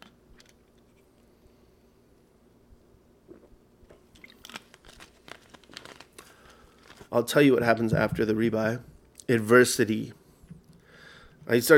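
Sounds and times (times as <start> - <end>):
person sipping from a plastic soda bottle: 3.2 - 4.6
plastic soda bottle crinkling while handled: 3.3 - 7.2
speech: 7.1 - 10.2, 11.5 - 11.7.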